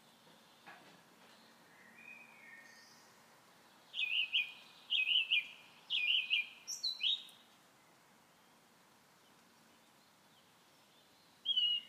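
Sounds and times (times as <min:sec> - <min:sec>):
common nightingale song of loud bright repeated notes: 0:00.0 - 0:11.8.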